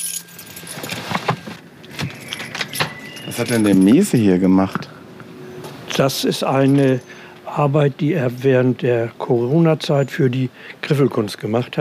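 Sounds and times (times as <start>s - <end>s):
keys jangling: 0.0s - 1.4s, 2.0s - 4.2s
low hum: 0.0s - 11.7s
speech: 3.4s - 4.9s, 6.0s - 11.7s.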